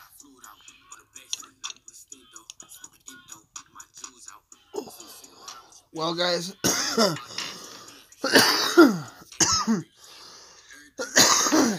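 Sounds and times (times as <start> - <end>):
strained raspy breaths: 4.7 - 6.0, 7.1 - 8.3, 9.9 - 11.0
speech: 6.0 - 7.3, 8.3 - 9.0
person in a harsh wheezy coughing fit: 6.6 - 9.9, 11.0 - 11.7.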